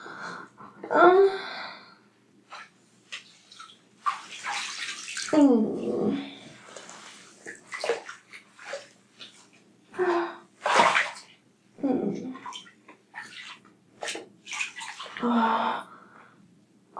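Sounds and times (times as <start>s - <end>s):
speech: 0.9s - 1.4s
warm bathwater sloshing and splashing in a filled bathtub: 2.5s - 15.8s.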